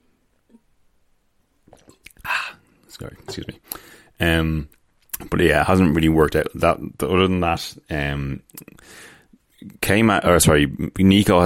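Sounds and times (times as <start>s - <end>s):
soft wet mouth sounds and gulps: 1.6s - 2.3s
person sipping water: 1.6s - 2.9s
speech: 3.0s - 11.4s.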